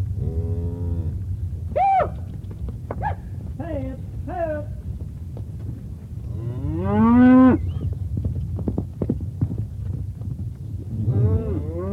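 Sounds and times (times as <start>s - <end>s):
steady low rumble: 0.0s - 11.9s
cow mooing: 6.3s - 7.6s, 11.0s - 11.9s.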